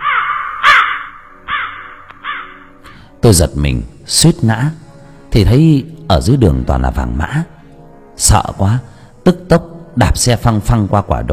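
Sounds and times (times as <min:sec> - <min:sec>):
large black crow cawing: 0:00.0 - 0:03.0
speech: 0:03.2 - 0:07.5, 0:08.2 - 0:11.3.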